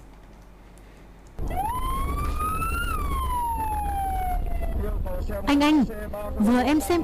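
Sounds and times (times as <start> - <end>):
ambulance siren wailing: 1.4 - 5.4
steady traffic rumble: 1.4 - 7.0
speech: 5.3 - 7.0.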